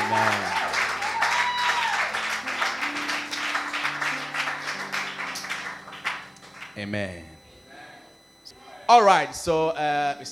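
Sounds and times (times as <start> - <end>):
crowd clapping: 0.0 - 6.8
sustained low keyboard or organ notes: 0.0 - 10.3
speech: 6.8 - 7.4, 8.9 - 10.3.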